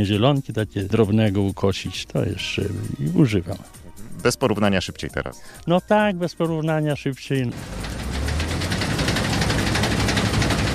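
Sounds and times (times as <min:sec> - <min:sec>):
speech: 0:00.0 - 0:07.9
old combine harvester engine running: 0:07.5 - 0:10.7.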